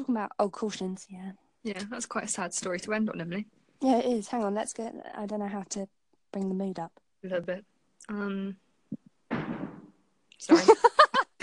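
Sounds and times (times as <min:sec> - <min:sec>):
speech: 0:00.0 - 0:08.6, 0:10.4 - 0:10.9
door slamming shut: 0:09.3 - 0:09.9
laughter: 0:10.5 - 0:11.4.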